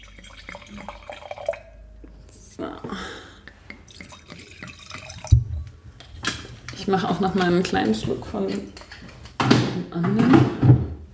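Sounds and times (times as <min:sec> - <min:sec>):
wine pouring from a bottle: 0:00.0 - 0:01.8, 0:03.7 - 0:05.8
speech: 0:06.9 - 0:08.8, 0:10.0 - 0:10.4.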